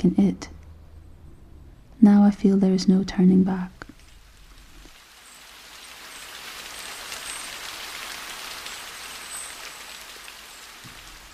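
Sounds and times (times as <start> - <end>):
speech: 0.0 - 0.6, 2.0 - 3.8
rain pattering on cement, stone and a plastic raincoat: 3.3 - 11.3.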